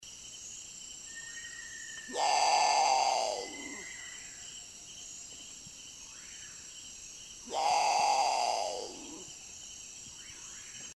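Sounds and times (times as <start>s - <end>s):
Great Potoo Nyctibius grandis calling: 2.0s - 4.2s, 7.4s - 9.3s.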